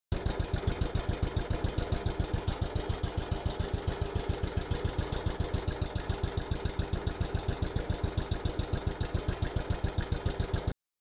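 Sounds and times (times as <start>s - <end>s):
MS-1 idling: 0.1s - 10.8s.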